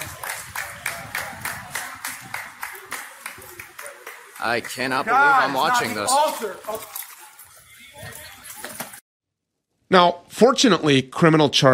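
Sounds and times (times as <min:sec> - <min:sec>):
people clapping together in a steady rhythm: 0:00.0 - 0:06.1
speech: 0:04.4 - 0:07.0, 0:09.9 - 0:11.7.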